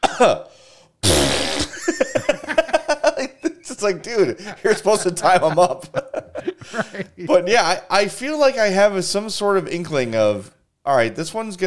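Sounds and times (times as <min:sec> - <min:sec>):
speech: 0:00.2 - 0:02.0, 0:03.8 - 0:11.6
voice imitating a fart: 0:01.0 - 0:01.8
laughter: 0:01.7 - 0:07.8.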